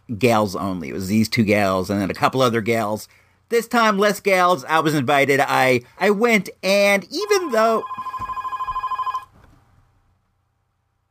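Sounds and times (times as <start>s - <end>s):
speech: 0.1s - 8.2s
telephone ringing with a trilling electronic burst: 7.2s - 9.3s.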